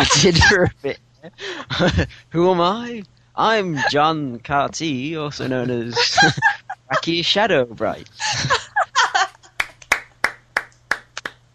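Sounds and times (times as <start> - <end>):
voiced laughter-like sounds: 0.0 - 2.3, 3.7 - 4.0, 5.4 - 7.2, 8.2 - 9.6
speech: 0.2 - 8.6
sharp hand claps from one or two people: 9.6 - 11.4.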